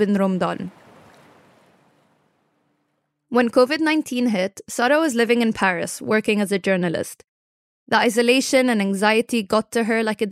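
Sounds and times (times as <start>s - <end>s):
speech: 0.0s - 0.8s, 3.3s - 7.3s, 7.9s - 10.3s
sea waves crashing against house walls in a coastal city: 0.0s - 3.0s.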